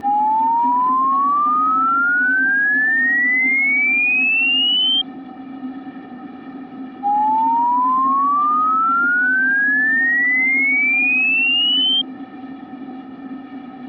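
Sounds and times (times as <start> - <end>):
800 to 3200 Hz sine sweep tone in La Spezia: 0.0 - 13.8.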